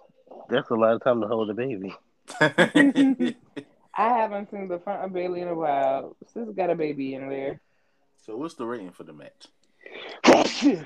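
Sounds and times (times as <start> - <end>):
speech: 0.5 - 10.8
laughter: 2.3 - 3.6
sneeze: 10.1 - 10.8.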